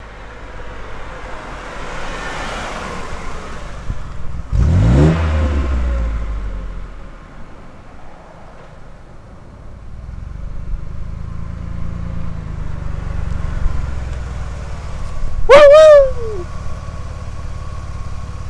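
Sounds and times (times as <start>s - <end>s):
Ford Taurus with Magnaflow exhaust: 3.7s - 7.8s, 9.6s - 18.4s.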